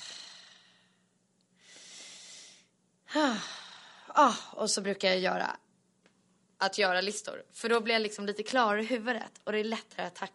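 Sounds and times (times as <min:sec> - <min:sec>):
voiced sigh: 0:00.0 - 0:01.0, 0:01.6 - 0:04.6
deep breath in and out: 0:00.0 - 0:04.6
speech: 0:03.1 - 0:03.6, 0:04.2 - 0:05.6, 0:06.6 - 0:10.3.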